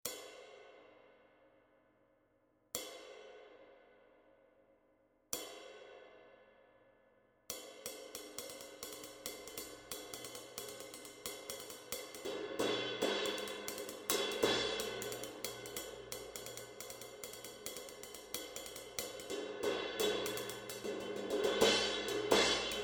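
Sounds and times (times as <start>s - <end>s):
20 inch dry ride cymbal weighing 2030g: 7.6s - 22.8s.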